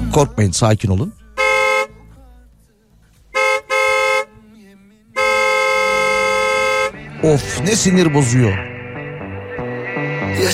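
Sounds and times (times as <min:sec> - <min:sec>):
speech: 0:00.1 - 0:01.2, 0:07.2 - 0:08.7, 0:10.3 - 0:10.5
car horns honking in traffic: 0:01.2 - 0:02.4, 0:03.1 - 0:08.3.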